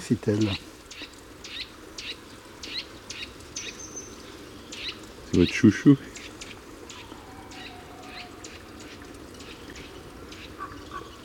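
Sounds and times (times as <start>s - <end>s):
speech: 0.0s - 0.8s, 5.4s - 6.1s
steady outdoor hiss: 0.0s - 11.2s
common raven croaking while flying: 4.8s - 11.2s.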